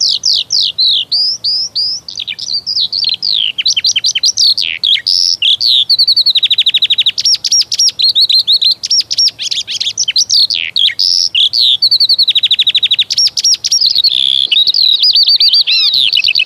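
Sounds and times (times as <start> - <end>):
Eurasian skylark song: 0.0 - 16.4.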